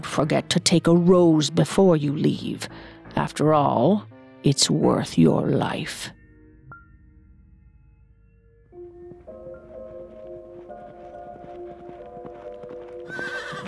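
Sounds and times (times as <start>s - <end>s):
speech: 0.0s - 6.2s
horse hooves clip-clopping: 9.1s - 13.6s
horse whinnying with long wavering neighs: 13.0s - 13.6s.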